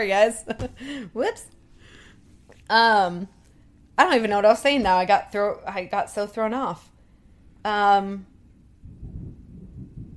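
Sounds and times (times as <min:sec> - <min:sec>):
speech: 0:00.0 - 0:01.6, 0:02.7 - 0:03.4, 0:04.0 - 0:06.9, 0:07.6 - 0:08.3
low rumble of thunder during rain: 0:08.8 - 0:10.1.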